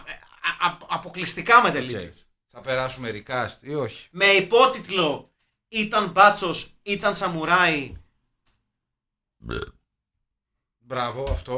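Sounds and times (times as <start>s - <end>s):
speech: 0.6s - 8.0s, 9.4s - 9.7s, 10.9s - 11.5s
loud throaty burp: 9.4s - 9.9s.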